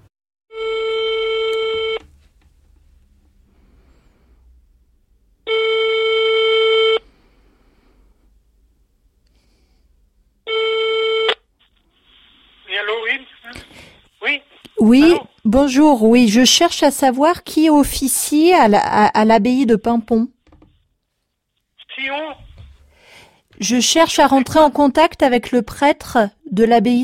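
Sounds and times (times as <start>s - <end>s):
telephone ringback tone as a call is placed: 0.5s - 2.0s, 5.5s - 7.0s, 10.5s - 11.4s
speech: 14.8s - 20.4s, 23.6s - 27.0s.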